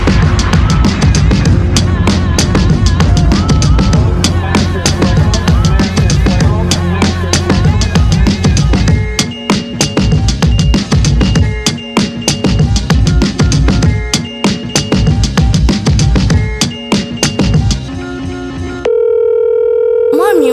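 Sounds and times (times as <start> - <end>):
loud busy beat with punchy drums: 0.0 - 17.9
steady electronic telephone ring tone: 18.8 - 20.5.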